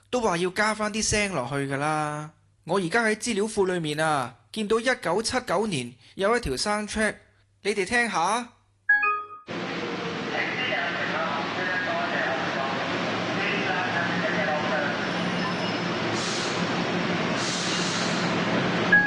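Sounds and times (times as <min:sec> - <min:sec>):
speech: 0:00.1 - 0:08.6
subway train rumbling through Diamond Hill MTR station in Hong Kong: 0:09.5 - 0:19.0
subway train air brakes hissing: 0:15.4 - 0:18.5.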